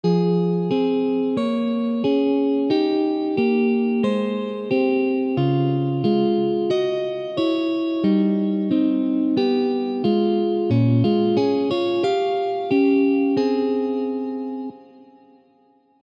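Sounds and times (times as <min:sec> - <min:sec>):
small chord: 0:00.0 - 0:16.0.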